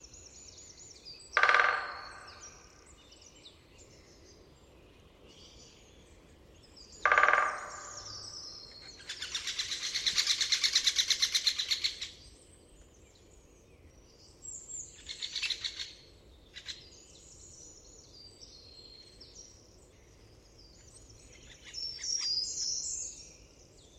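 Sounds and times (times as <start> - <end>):
great spotted woodpecker: 1.3 - 2.8, 6.9 - 12.2.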